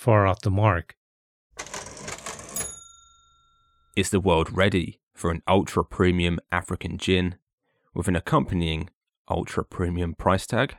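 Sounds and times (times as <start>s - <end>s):
speech: 0.0s - 1.0s, 4.0s - 10.7s
cash register rattling: 1.6s - 3.4s
cash register bell ringing: 1.6s - 4.0s.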